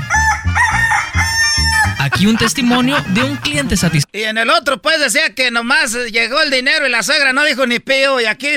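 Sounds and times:
loud rooster crowing: 0:00.0 - 0:02.1
laughter: 0:01.8 - 0:04.0
speech: 0:02.2 - 0:08.5.

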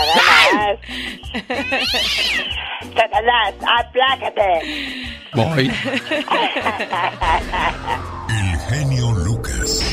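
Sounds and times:
cat meowing with drawn-out wavering yowls: 0:00.0 - 0:00.6, 0:01.6 - 0:02.6
laughter: 0:00.0 - 0:03.0, 0:04.8 - 0:08.7
speech: 0:03.0 - 0:09.8.

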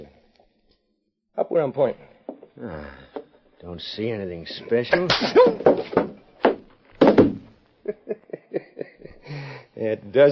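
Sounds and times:
speech: 0:01.5 - 0:06.2, 0:09.8 - 0:10.3
heavy punch impacts, one landing on a man's chin: 0:05.0 - 0:07.5
laughter: 0:07.8 - 0:09.4.

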